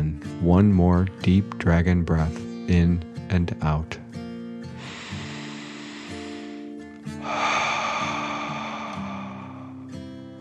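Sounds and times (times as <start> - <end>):
speech: 0.4 - 4.0
soft ocean waves rolling over a reef: 7.2 - 9.9
steady low musical drone: 7.2 - 10.0.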